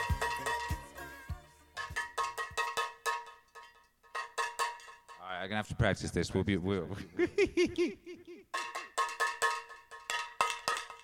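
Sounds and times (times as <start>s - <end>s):
cowbell struck with a spoon: 0.0s - 5.3s, 8.5s - 11.0s
speech: 5.5s - 8.1s
laughter: 6.9s - 8.5s.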